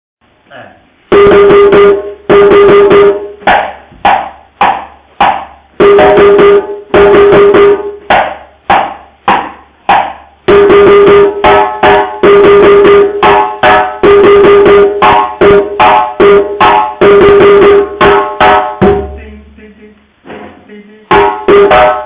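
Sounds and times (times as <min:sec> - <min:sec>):
drum break: 0:01.1 - 0:22.0.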